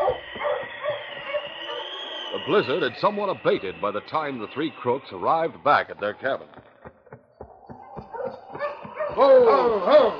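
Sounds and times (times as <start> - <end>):
pack of sled dogs huskies barking and yelping: 0.0 - 2.4, 7.6 - 10.1
speech: 2.4 - 6.7, 9.2 - 10.1.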